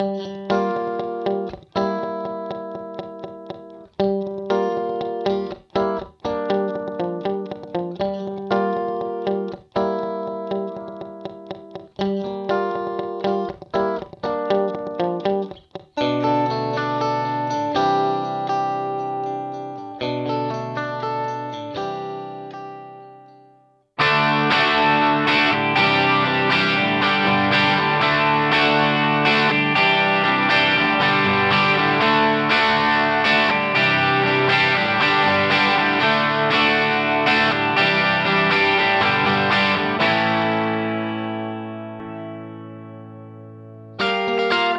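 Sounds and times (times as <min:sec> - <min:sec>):
guitar through Yamaha Rev7: 0:00.0 - 0:44.7
vintage electric bass B: 0:24.0 - 0:41.5.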